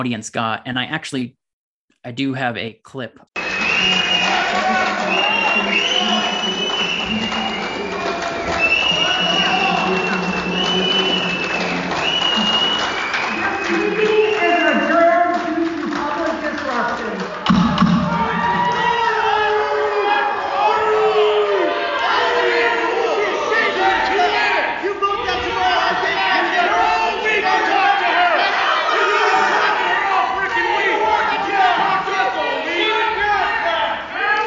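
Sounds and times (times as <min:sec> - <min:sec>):
speech: 0:00.0 - 0:01.4, 0:02.0 - 0:05.8
piercing whistles: 0:03.4 - 0:15.0
people screaming, shouting and swearing: 0:03.4 - 0:15.7, 0:17.4 - 0:34.4
loud audience yelling during a discussion: 0:03.4 - 0:34.4.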